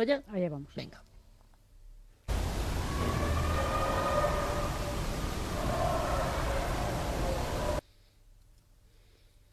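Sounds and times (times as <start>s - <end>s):
speech: 0.0s - 1.1s
eerie wailing cries in an EVP recording: 2.3s - 7.8s
loud static hiss: 2.3s - 7.8s.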